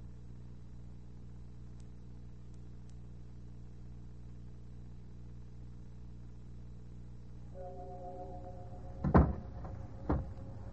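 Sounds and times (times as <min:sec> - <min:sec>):
low hum: 0:00.0 - 0:10.7
door shutting with a solid thud: 0:09.0 - 0:10.6.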